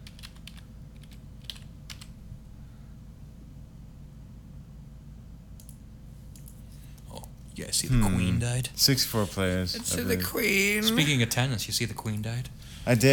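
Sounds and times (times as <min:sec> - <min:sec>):
typing on a computer keyboard: 0:00.0 - 0:02.2
steady low hum: 0:00.0 - 0:13.1
speech: 0:07.6 - 0:13.1.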